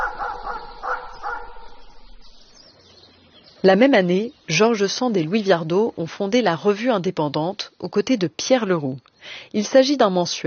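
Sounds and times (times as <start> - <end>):
dog barking: 0.0 - 2.0
speech: 3.6 - 10.4.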